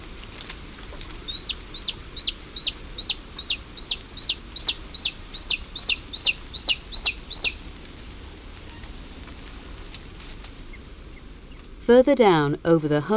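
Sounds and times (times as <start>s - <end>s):
short-toed snake eagle chick begging for food in its nest: 1.3s - 8.9s
speech: 11.9s - 13.1s.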